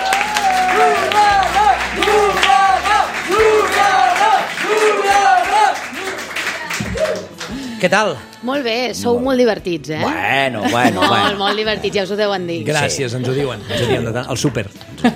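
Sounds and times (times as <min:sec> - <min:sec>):
whoops and excited cheering: 0:00.0 - 0:07.4
large audience applause: 0:00.0 - 0:07.7
speech: 0:07.8 - 0:15.1
laughter: 0:10.6 - 0:15.1.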